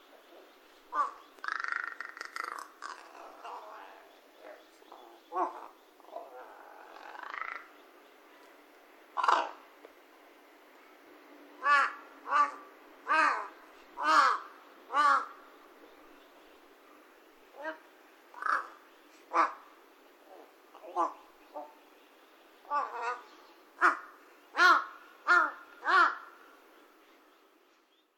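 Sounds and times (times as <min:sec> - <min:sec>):
large-billed crow cawing in Saitama Japan: 0:00.9 - 0:03.6, 0:06.9 - 0:07.7, 0:09.2 - 0:09.6, 0:11.6 - 0:15.5, 0:17.6 - 0:19.7, 0:22.7 - 0:26.4.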